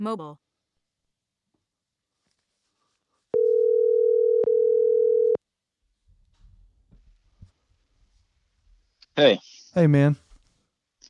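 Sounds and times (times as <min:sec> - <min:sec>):
speech: 0:00.0 - 0:00.4, 0:09.2 - 0:10.2
phone ringing tone on an outgoing call to a mobile: 0:03.4 - 0:05.4.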